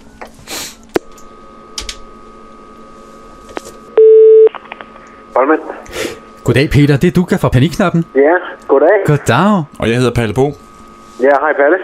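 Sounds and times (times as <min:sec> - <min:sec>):
telephone call tone while dialing out: 0:04.0 - 0:04.6
speech: 0:05.4 - 0:10.6, 0:11.2 - 0:11.8.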